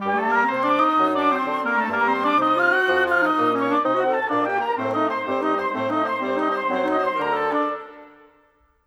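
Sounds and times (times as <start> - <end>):
modern orchestral wind instruments: 0.0 - 8.6.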